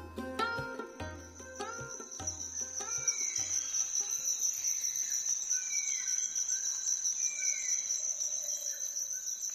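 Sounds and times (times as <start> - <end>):
high-pitched drone of chirping insects at an outdoor temple: 0.4 - 9.5.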